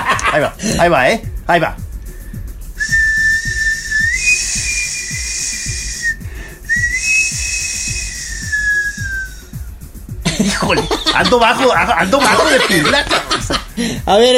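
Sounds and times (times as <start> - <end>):
laughter: 0.0 - 0.6, 10.3 - 13.7
soft steady thumping beat: 0.0 - 14.3
speech: 0.4 - 1.8, 10.4 - 14.3
person whistling an imitation of a knife sharpener's whistle: 2.8 - 9.6.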